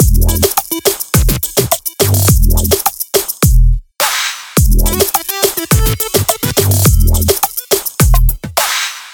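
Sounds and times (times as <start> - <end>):
music: 0.0 - 9.1.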